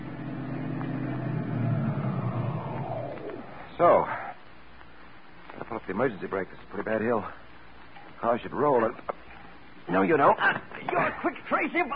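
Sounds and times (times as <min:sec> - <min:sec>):
car engine rumble pulling up outside an apartment house: 0:00.0 - 0:03.7
road noise: 0:00.0 - 0:03.8
speech: 0:03.8 - 0:04.2, 0:05.7 - 0:07.4, 0:08.2 - 0:09.2, 0:09.9 - 0:11.9.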